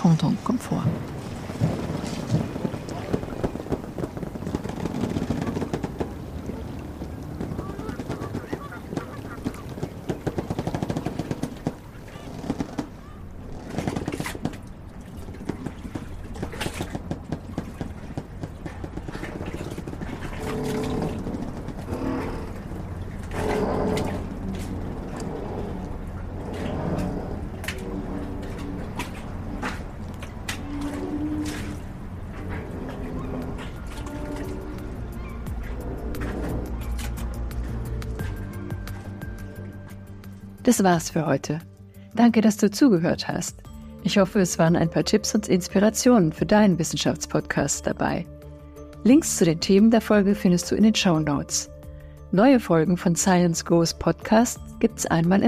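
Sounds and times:
speech: 0:00.0 - 0:01.6, 0:40.7 - 0:48.4, 0:49.0 - 0:51.7, 0:52.3 - 0:55.4
wind gusts in a harbor: 0:00.0 - 0:40.6
low boat engine rumble in a harbor: 0:00.0 - 0:55.4
seagull cries in a harbor: 0:07.4 - 0:09.9.

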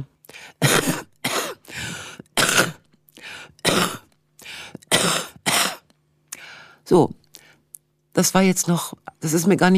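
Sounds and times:
forceful deliberate demonstration coughs: 0:00.6 - 0:02.9, 0:03.6 - 0:04.1, 0:04.7 - 0:05.9
speech: 0:06.9 - 0:07.2, 0:08.2 - 0:09.7.

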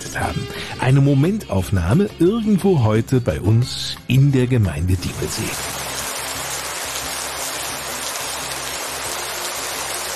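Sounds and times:
speech: 0:00.2 - 0:05.7
steady rain falling under a grey sky: 0:05.0 - 0:10.1.

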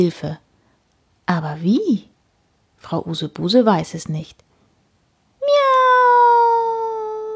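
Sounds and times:
speech: 0:00.0 - 0:00.4, 0:01.3 - 0:02.1, 0:02.8 - 0:04.5
cat meowing: 0:05.4 - 0:07.3.

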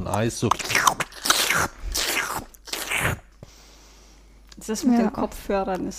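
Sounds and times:
pistachios being cracked open and chewed: 0:00.0 - 0:03.2
speech: 0:00.1 - 0:01.0, 0:04.7 - 0:05.9.

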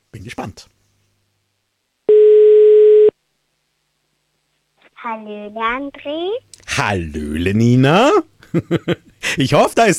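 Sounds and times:
speech: 0:00.2 - 0:00.8, 0:05.0 - 0:09.9
clean electronic telephone ringing tone: 0:02.1 - 0:03.1.

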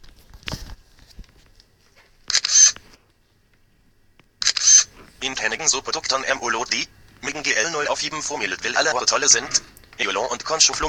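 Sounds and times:
reading device camera clicking and whirring capturing a dishwashing liquid bottle: 0:01.3 - 0:03.0, 0:04.2 - 0:06.2, 0:08.4 - 0:10.8
speech: 0:05.2 - 0:10.8.

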